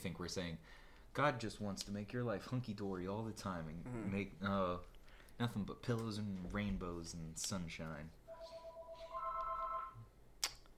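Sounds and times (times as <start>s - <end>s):
speech: 0.0s - 8.6s
phone's electronic ring: 8.3s - 10.0s.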